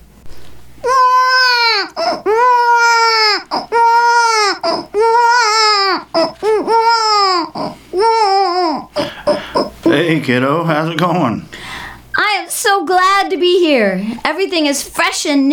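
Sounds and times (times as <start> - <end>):
baby crying with long strained wails: 0.8 - 10.0
speech: 10.2 - 11.6, 12.6 - 15.5.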